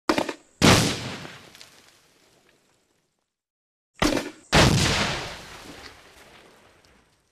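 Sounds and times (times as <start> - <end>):
grenade thrown: 0.1 - 2.0, 4.0 - 6.6
grenade explosion: 0.2 - 1.6, 4.0 - 6.8
earth debris falling after grenade explosion: 0.6 - 3.4, 4.4 - 7.2.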